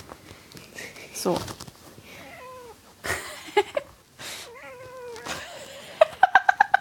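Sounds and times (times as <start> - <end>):
rustling: 0.0 - 3.1, 3.8 - 5.8
speech: 1.2 - 1.6
cat meowing in a home office: 2.2 - 2.8, 4.5 - 5.5.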